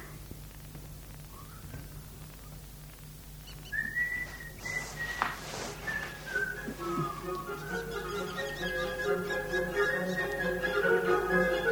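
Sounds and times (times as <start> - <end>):
person whistling a melody: 3.7 - 11.5.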